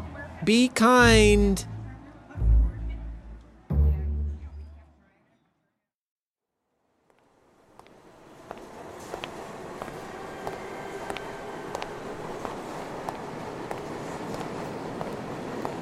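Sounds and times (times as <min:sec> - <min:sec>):
speech: 0:00.4 - 0:01.7
footsteps going down an empty stairwell: 0:07.0 - 0:15.8.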